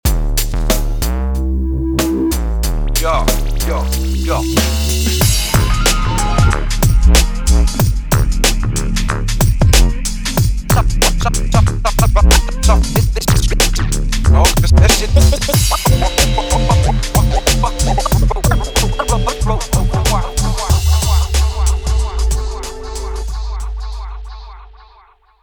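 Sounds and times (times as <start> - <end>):
hip hop bass: 0.0 - 25.4.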